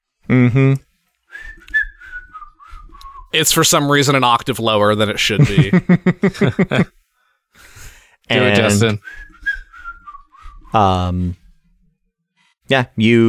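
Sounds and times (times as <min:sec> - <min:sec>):
speech: 0:00.3 - 0:00.9, 0:03.3 - 0:07.0, 0:08.3 - 0:09.3, 0:10.7 - 0:11.4, 0:12.7 - 0:13.2
person whistling a short wavering tune: 0:01.3 - 0:03.3, 0:09.0 - 0:10.8
laughter: 0:05.3 - 0:07.0.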